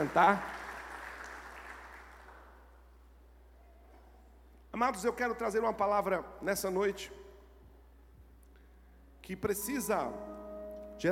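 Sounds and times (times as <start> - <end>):
speech: 0.0 - 0.6, 4.8 - 7.2, 9.3 - 10.3
crowd clapping at a worship service: 0.0 - 2.8.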